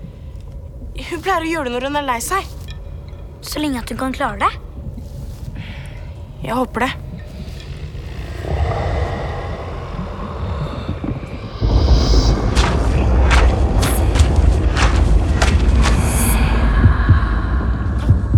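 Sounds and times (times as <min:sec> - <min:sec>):
deep droning rumble: 0:00.0 - 0:18.3
speech: 0:01.1 - 0:02.6, 0:03.4 - 0:04.6, 0:06.4 - 0:07.0
heartbeat: 0:04.5 - 0:18.3.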